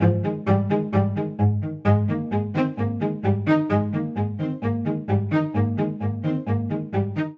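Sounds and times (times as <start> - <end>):
string quartet ostinato in A-flat major at 130 bpm: 0.0 - 7.3.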